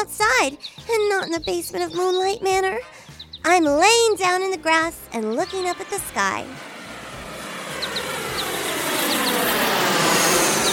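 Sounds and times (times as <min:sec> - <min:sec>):
speech: 0:00.1 - 0:06.7, 0:08.0 - 0:08.3
large airplane flying overhead: 0:00.3 - 0:10.7
faint bird chirps: 0:00.4 - 0:03.6, 0:05.1 - 0:06.2.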